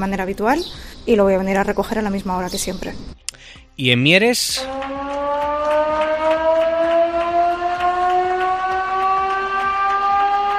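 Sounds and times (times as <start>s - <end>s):
speech: 0.0s - 3.2s, 3.8s - 4.9s
mine shift-change siren wailing in Mieres: 4.5s - 10.5s.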